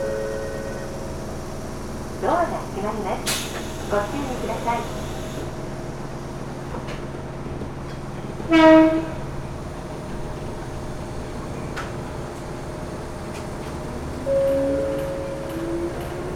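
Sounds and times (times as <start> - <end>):
local train rumbling along rails: 0.0 - 16.3
speech: 2.2 - 5.0, 8.5 - 9.2
local train horn: 8.5 - 9.2, 14.2 - 16.3.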